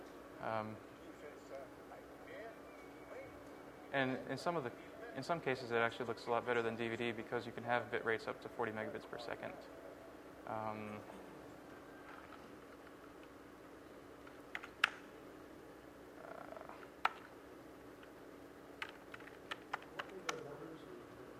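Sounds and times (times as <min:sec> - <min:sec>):
low steady hum: 0:00.0 - 0:21.3
speech: 0:00.4 - 0:00.9, 0:03.9 - 0:09.8, 0:10.5 - 0:11.2
keyboard typing as numbers are entered: 0:14.2 - 0:15.1, 0:16.5 - 0:17.3, 0:18.8 - 0:20.5.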